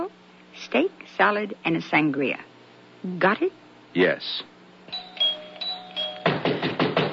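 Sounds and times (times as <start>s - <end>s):
speech: 0.1s - 4.5s
doorbell ringing: 4.9s - 6.6s
rapid heavy pounding on a door: 6.3s - 7.1s.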